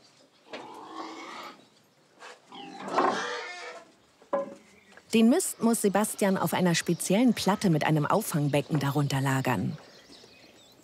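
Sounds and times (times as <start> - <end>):
pigs grunting and squealing in a farm stall in the Spreewald: 0.5 - 1.6, 2.5 - 3.9
speech: 5.1 - 9.9.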